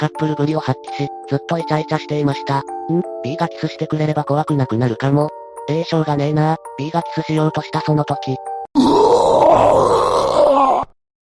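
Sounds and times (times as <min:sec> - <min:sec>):
speech: 0:00.0 - 0:10.4
person retching and gagging: 0:08.8 - 0:11.0.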